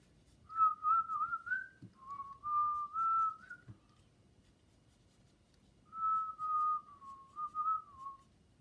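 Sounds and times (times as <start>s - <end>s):
faint scratching or rustling: 0.0s - 1.5s, 2.2s - 8.5s
person whistling a simple melodic tune: 0.5s - 3.7s, 5.9s - 8.3s.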